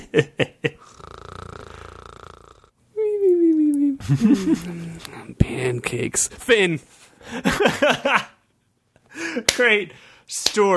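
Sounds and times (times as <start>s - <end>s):
speech: 0.2s - 0.5s, 4.1s - 8.3s, 9.3s - 10.7s
person imitating a cartoonish snore: 0.8s - 2.7s
laughter: 4.0s - 5.0s, 7.3s - 8.4s.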